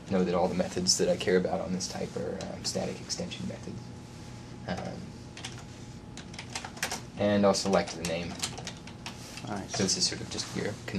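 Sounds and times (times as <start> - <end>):
low steady hum: 0.0 - 10.9
speech: 0.1 - 4.0, 4.7 - 5.1, 7.2 - 8.6, 9.4 - 10.9
soft typing on a computer keyboard entering a code query: 4.8 - 5.6, 6.2 - 7.0, 7.6 - 9.2.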